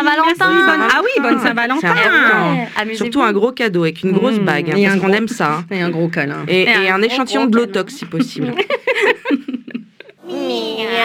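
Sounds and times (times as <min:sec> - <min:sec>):
speech: 0:00.0 - 0:09.4
laughter: 0:00.2 - 0:03.1, 0:04.2 - 0:11.0
human voice imitating cat meows: 0:00.4 - 0:02.7.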